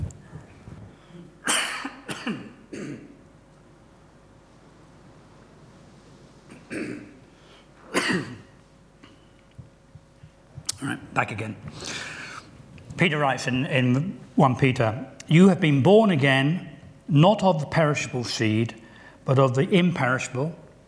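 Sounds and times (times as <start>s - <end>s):
soft breathing: 0.2s - 1.4s, 7.2s - 7.9s, 11.6s - 12.7s, 18.8s - 19.2s
man with a froggy throat clearing throat and coughing: 1.4s - 3.2s, 6.5s - 7.2s, 7.9s - 9.2s
speech: 2.3s - 2.8s, 11.2s - 12.1s, 13.0s - 20.6s.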